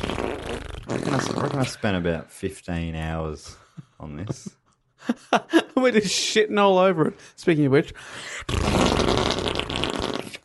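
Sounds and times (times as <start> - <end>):
loud sustained fart: 0.0 - 1.8, 8.5 - 10.4
speech: 1.0 - 9.5.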